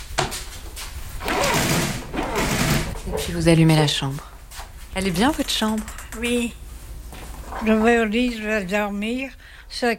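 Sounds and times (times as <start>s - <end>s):
window shutters being closed: 1.2s - 3.1s
window shutter rattling, scraping sweep: 1.2s - 3.4s
speech: 3.2s - 4.3s, 5.0s - 6.6s, 7.6s - 9.9s.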